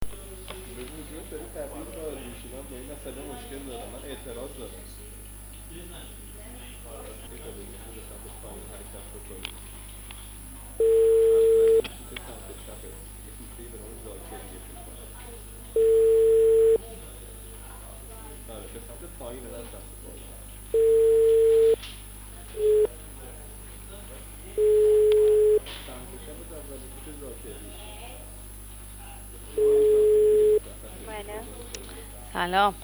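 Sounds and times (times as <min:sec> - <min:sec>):
faint murmuring background: 0:00.0 - 0:32.8
speech: 0:02.7 - 0:05.1, 0:05.7 - 0:06.2, 0:32.4 - 0:32.8
telephone ringing tone heard through the handset: 0:10.8 - 0:11.8, 0:15.8 - 0:16.8, 0:20.8 - 0:21.8, 0:22.6 - 0:22.9, 0:24.6 - 0:25.6, 0:29.6 - 0:30.6.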